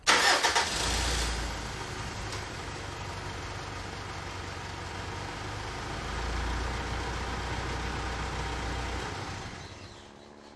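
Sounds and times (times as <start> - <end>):
truck engine cranking, starting and idling: 0.0 - 10.5.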